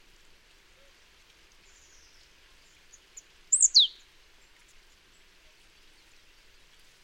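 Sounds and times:
soft hiss: 0:00.0 - 0:07.0
marsh tit call with two high clipped notes: 0:03.5 - 0:03.9.

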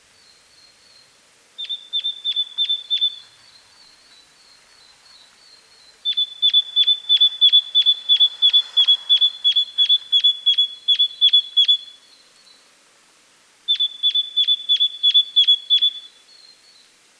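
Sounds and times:
great tit Parus major giving ringing chink calls: 0:01.6 - 0:03.4, 0:05.1 - 0:12.6, 0:13.7 - 0:16.9.

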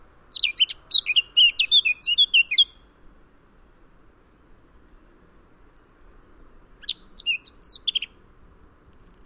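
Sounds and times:
Sylvia atricapilla Eurasian blackcap singing a varied warble: 0:00.3 - 0:02.9, 0:06.8 - 0:08.2.

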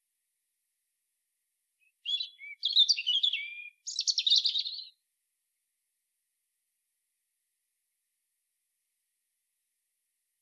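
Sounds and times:
European robin Erithacus rubecula singing: 0:01.8 - 0:05.0.

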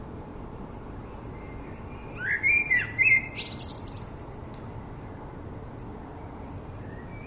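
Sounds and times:
common blackbird Turdus merula song: 0:00.7 - 0:05.2, 0:06.2 - 0:07.2.

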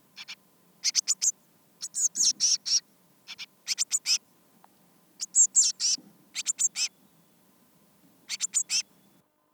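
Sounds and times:
Eurasian blue tit Cyanistes caeruleus giving short high buzzy call notes: 0:00.2 - 0:04.2, 0:05.2 - 0:06.9, 0:08.3 - 0:08.9.

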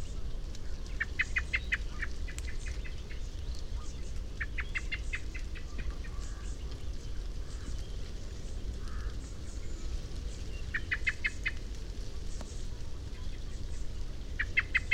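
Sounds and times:
constant low-pitched noise: 0:00.0 - 0:14.9
common blackbird Turdus merula uttering sharp ticking notes: 0:00.9 - 0:07.9, 0:10.6 - 0:11.6, 0:14.4 - 0:14.9.

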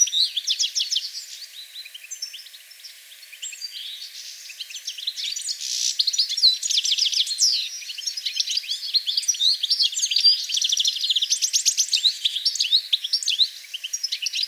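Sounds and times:
European goldfinch Carduelis carduelis song: 0:00.0 - 0:14.4.

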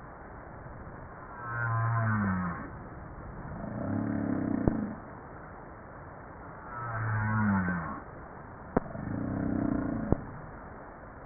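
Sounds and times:
humpback whale low tonal moan: 0:01.3 - 0:02.8, 0:03.5 - 0:05.0, 0:06.7 - 0:08.1, 0:08.8 - 0:10.4.

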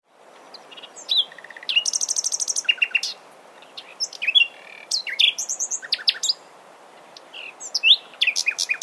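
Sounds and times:
Common nightingale song with rattling trills, clicks and whistled slurs: 0:00.5 - 0:03.2, 0:03.8 - 0:06.4, 0:07.4 - 0:08.8.

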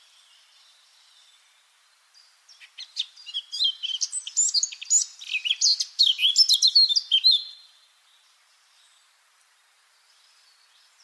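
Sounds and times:
Eurasian blackcap Sylvia atricapilla singing: 0:02.5 - 0:07.7.

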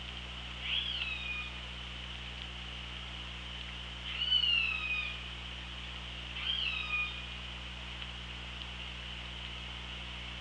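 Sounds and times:
continuous background hiss: 0:00.0 - 0:10.4
orca harmonic squealing calls on hydrophone: 0:00.6 - 0:01.6, 0:04.0 - 0:05.2, 0:06.4 - 0:07.2.

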